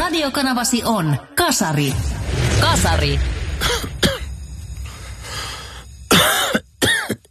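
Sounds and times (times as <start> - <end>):
speech: 0.1 - 3.9
person coughing harshly: 3.6 - 4.3, 6.1 - 7.2.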